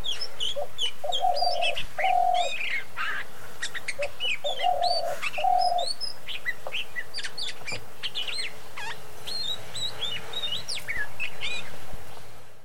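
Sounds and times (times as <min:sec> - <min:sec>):
another bird giving low hooting coos: 0:00.0 - 0:06.0
Oriental magpie-robin singing: 0:00.0 - 0:11.8.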